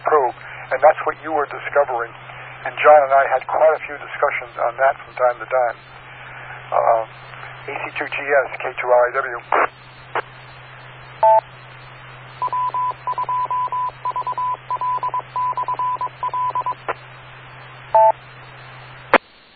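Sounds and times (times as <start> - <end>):
steady low hum: 0.0 - 19.5
speech: 0.7 - 6.0, 6.7 - 10.3, 11.2 - 11.4
amateur radio repeater beeping tones: 11.2 - 11.4, 12.4 - 17.0, 17.9 - 18.2.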